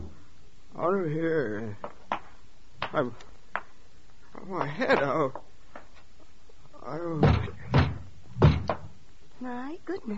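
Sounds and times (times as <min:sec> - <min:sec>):
speech: 0:00.8 - 0:02.0, 0:02.9 - 0:03.3, 0:04.4 - 0:05.5, 0:06.8 - 0:07.5, 0:09.4 - 0:10.1
heavy pounding on a door: 0:07.2 - 0:08.9.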